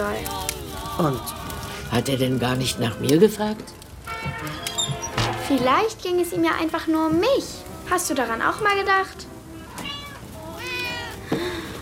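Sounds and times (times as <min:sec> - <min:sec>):
speech: 0:00.0 - 0:04.6, 0:05.5 - 0:09.3
cat meowing from inside a box: 0:04.2 - 0:05.0, 0:09.5 - 0:11.2.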